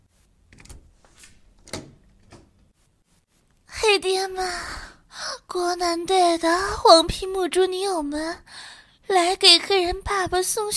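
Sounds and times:
door handle rattling: 1.6 - 2.6
speech: 4.0 - 4.8, 5.5 - 8.5, 9.1 - 10.7.

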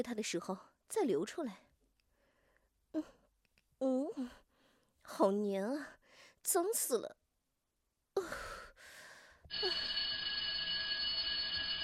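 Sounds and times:
speech: 0.0 - 1.7, 2.9 - 3.2, 3.8 - 4.4, 5.1 - 7.2, 9.5 - 10.0
electric school bell ringing for the end of class: 9.5 - 11.8.

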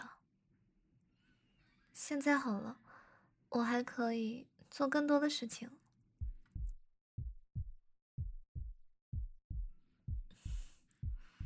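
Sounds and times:
speech: 2.0 - 2.9, 3.5 - 5.8
heartbeat thumping in lub-dub pairs: 6.2 - 11.4.

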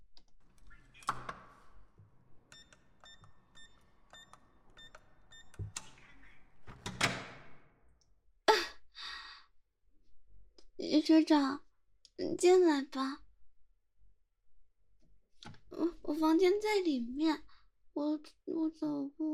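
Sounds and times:
mechanical clicks and clunks of the door latch and handle: 0.4 - 7.6
door rattling swing: 0.4 - 7.7
short electronic keypad beeps: 2.4 - 6.5
speech: 10.9 - 11.6, 12.2 - 13.2, 15.8 - 19.3.

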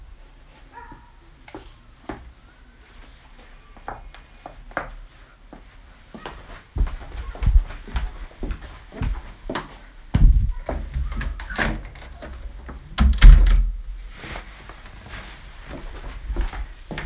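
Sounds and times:
shuffling footsteps: 0.5 - 17.0
bedroom door handle click: 11.0 - 13.8.

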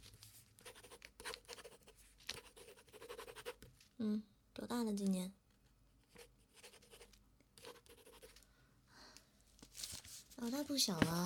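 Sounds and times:
pen scratching across paper writing an interview record: 0.6 - 3.7, 6.1 - 8.3
speech: 4.1 - 5.4, 10.5 - 11.2.

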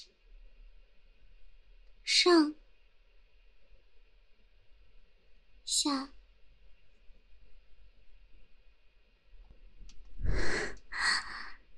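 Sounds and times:
speech: 2.2 - 2.6, 5.8 - 6.2
heavy rapid breaths: 10.2 - 11.7.

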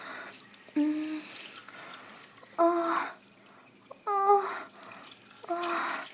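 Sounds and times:
bath water pouring and gurgling: 0.0 - 6.1.

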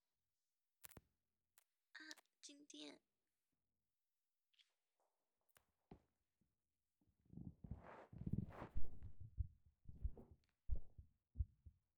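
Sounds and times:
speech: 2.4 - 3.1
soft heartbeat thumps: 7.4 - 11.9.

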